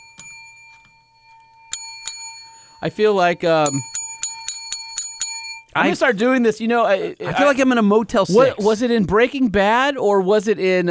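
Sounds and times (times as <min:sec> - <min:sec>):
small bell ringing: 0:00.0 - 0:07.2
speech: 0:02.8 - 0:03.9, 0:05.8 - 0:10.8.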